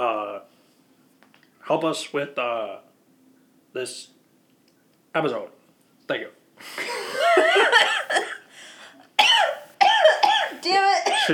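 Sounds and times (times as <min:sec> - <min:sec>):
speech: 0:01.7 - 0:02.9, 0:03.7 - 0:04.2, 0:05.2 - 0:08.0, 0:10.7 - 0:11.3
person coughing: 0:07.4 - 0:08.4, 0:09.2 - 0:11.3.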